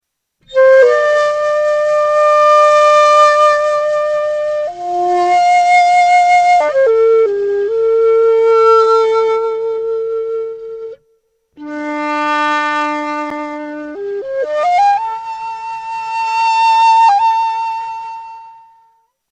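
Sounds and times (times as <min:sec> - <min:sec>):
shakuhachi flute: 0:00.4 - 0:19.2.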